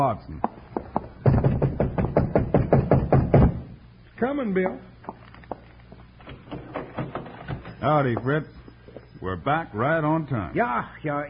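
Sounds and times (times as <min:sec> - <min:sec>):
speech: 0:00.0 - 0:00.5, 0:04.2 - 0:04.9, 0:07.8 - 0:08.6, 0:09.2 - 0:11.2
knuckles knocking on a locked door: 0:00.8 - 0:03.6.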